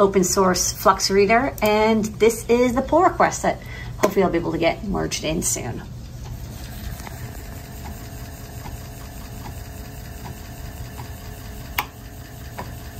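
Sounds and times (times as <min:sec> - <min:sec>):
speech: 0:00.0 - 0:06.0
5.25-inch floppy disk drive spinning: 0:03.7 - 0:12.9.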